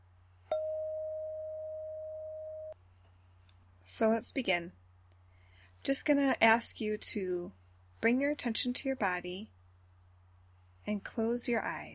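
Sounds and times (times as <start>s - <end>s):
faint low hum: 0.0s - 11.9s
bell struck to mark the end of a mindfulness session: 0.5s - 2.7s
speech: 3.9s - 4.8s, 5.8s - 9.6s, 10.8s - 11.9s.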